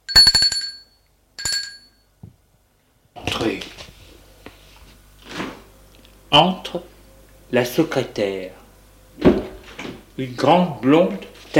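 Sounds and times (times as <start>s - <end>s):
doorbell ringing in bright rattling bursts: 0.0s - 2.0s
speech: 3.4s - 3.8s, 6.3s - 6.9s, 7.5s - 8.6s, 10.2s - 11.5s.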